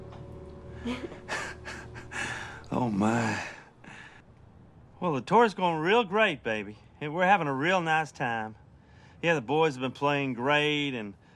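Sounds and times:
deep inhale and exhale of smoke from a joint: 0:00.7 - 0:04.3
speech: 0:00.8 - 0:01.4, 0:02.8 - 0:03.6, 0:05.0 - 0:08.6, 0:09.2 - 0:11.2.

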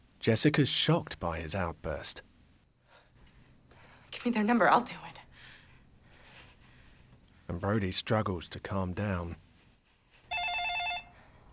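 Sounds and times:
speech: 0:00.2 - 0:02.3, 0:04.1 - 0:05.2, 0:07.5 - 0:09.4
telephone ringing: 0:10.3 - 0:11.3.

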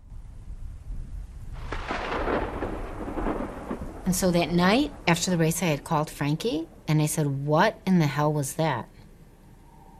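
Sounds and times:
thunder from a lightning strike: 0:00.0 - 0:06.7
speech: 0:04.1 - 0:08.9.

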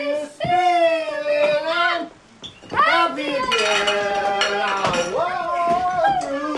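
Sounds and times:
loud lively voices: 0:00.0 - 0:06.5
dishes and cutlery clattering as a family tosses them: 0:03.4 - 0:05.2.

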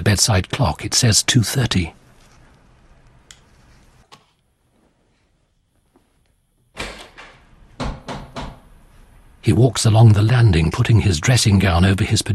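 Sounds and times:
speech: 0:00.1 - 0:02.0, 0:09.5 - 0:12.3
heavy knocking on a front door: 0:07.8 - 0:08.7.

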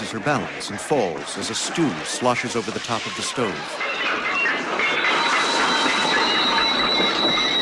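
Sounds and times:
speech: 0:00.1 - 0:04.9
train rumbling on rails: 0:01.2 - 0:07.6
thin high metallic squeal of train wheels: 0:03.8 - 0:07.6.

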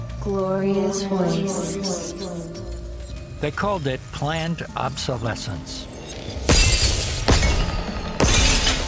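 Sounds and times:
speech: 0:00.2 - 0:02.8, 0:03.4 - 0:05.9
spray of glass fragments crackling: 0:03.0 - 0:08.8
light bulb exploding and glass shattering: 0:06.0 - 0:08.8.

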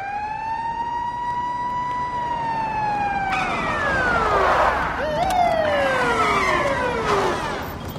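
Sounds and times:
rumble of engines and traffic: 0:00.0 - 0:07.9
several police squad car sirens wailing: 0:00.0 - 0:07.9.

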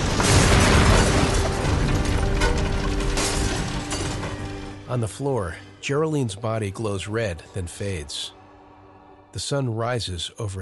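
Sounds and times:
building exploding: 0:00.0 - 0:04.8
crackling bursts: 0:00.0 - 0:04.9
speech: 0:04.9 - 0:08.4, 0:09.3 - 0:10.6.

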